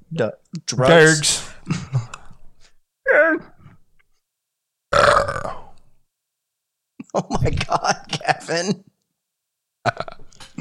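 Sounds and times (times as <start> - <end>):
speech: 0.1 - 2.0, 7.2 - 8.9
croaky belch: 4.9 - 5.8
loud burp: 4.9 - 5.8
throaty noise: 4.9 - 5.9.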